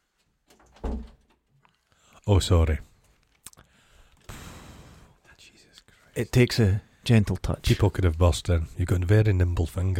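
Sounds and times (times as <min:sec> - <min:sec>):
door shutting: 0:00.5 - 0:01.4
speech: 0:02.3 - 0:02.9, 0:06.2 - 0:09.9.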